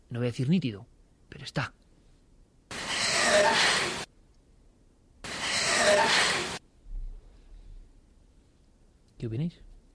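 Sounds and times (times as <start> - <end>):
speech: 0.1 - 1.8, 9.2 - 9.7
labored heavy breathing in a recorded psychophony: 2.7 - 4.1, 5.3 - 6.6.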